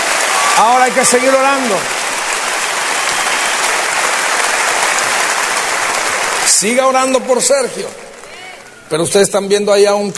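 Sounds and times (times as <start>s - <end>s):
loud steady audience applause: 0.0s - 9.2s
speech: 0.6s - 2.0s, 6.6s - 8.1s, 8.9s - 10.1s.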